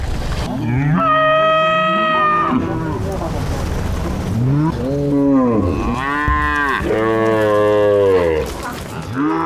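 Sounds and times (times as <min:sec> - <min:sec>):
cattle herd mooing: 0:00.5 - 0:03.4, 0:04.3 - 0:09.4.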